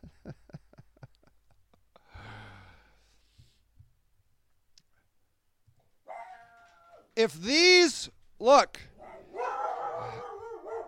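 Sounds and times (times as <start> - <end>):
dogs barking: 6.1 - 6.6, 8.9 - 10.8
speech: 7.2 - 8.9.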